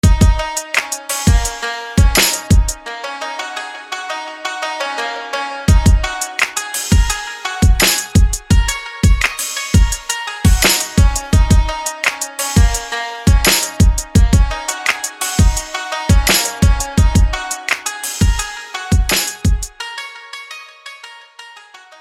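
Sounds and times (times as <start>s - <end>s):
shamisen: 0.0s - 21.9s.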